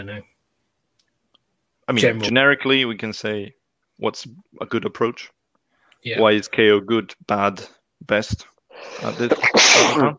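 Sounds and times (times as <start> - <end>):
speech: 0.0 - 0.4, 1.9 - 5.4, 6.0 - 10.1
sneeze: 9.0 - 10.1.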